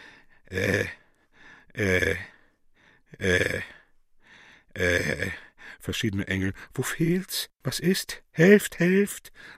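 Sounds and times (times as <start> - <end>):
old man groaning and moaning inarticulately: 0.4 - 2.5, 3.1 - 3.9, 4.7 - 5.5
speech: 0.5 - 1.0, 1.8 - 2.3, 3.2 - 3.6, 5.9 - 9.5.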